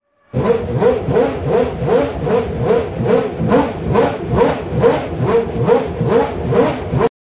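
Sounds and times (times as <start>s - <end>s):
Ferrari F1 V12 engine: 0.3s - 7.1s.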